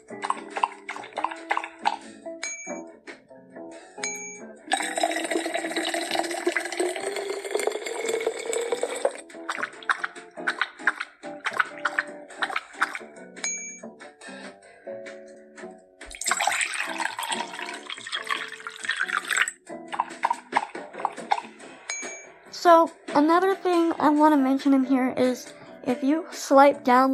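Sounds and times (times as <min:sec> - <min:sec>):
virtual dog in a pet game lapping water: 0:00.0 - 0:02.1, 0:04.7 - 0:13.2, 0:16.1 - 0:21.6
steady musical background: 0:00.0 - 0:27.1
bright chiming tones: 0:02.4 - 0:02.9, 0:13.4 - 0:13.9, 0:21.9 - 0:22.4
speech: 0:24.5 - 0:27.1.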